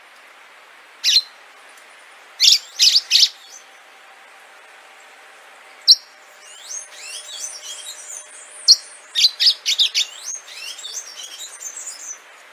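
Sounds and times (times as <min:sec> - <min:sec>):
orange-fronted yellow finch song: 0:01.0 - 0:03.9, 0:05.0 - 0:12.5.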